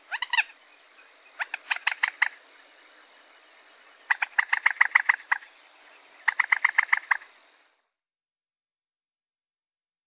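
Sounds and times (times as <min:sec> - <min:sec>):
common moorhen clucking: 0:00.0 - 0:07.4.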